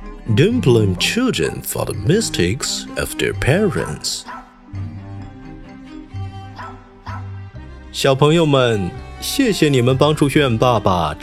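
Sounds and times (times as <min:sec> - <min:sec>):
speech: 0:00.3 - 0:04.4, 0:07.9 - 0:11.2
two dogs barking: 0:04.2 - 0:04.7, 0:06.5 - 0:07.5.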